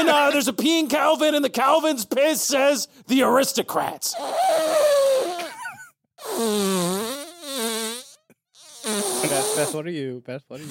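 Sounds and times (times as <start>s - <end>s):
speech: 0.0s - 5.5s, 6.2s - 7.2s, 8.8s - 10.7s
person blowing raspberries imitating a fart: 4.2s - 5.6s, 6.2s - 9.8s.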